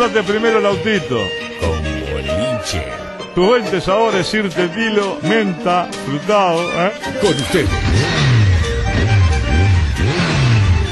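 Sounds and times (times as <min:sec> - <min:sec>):
speech: 0:00.0 - 0:01.8, 0:02.6 - 0:08.2
motorcycle engine revving: 0:07.4 - 0:10.9.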